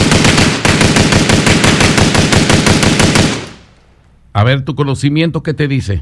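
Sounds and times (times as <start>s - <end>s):
rapid automatic firearm gunfire: 0.0s - 3.7s
speech: 4.4s - 6.0s.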